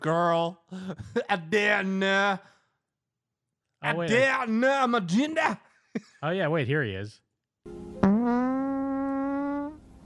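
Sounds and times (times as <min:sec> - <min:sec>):
speech: 0:00.0 - 0:02.6, 0:03.8 - 0:08.4
long buzzy fart: 0:08.0 - 0:09.9.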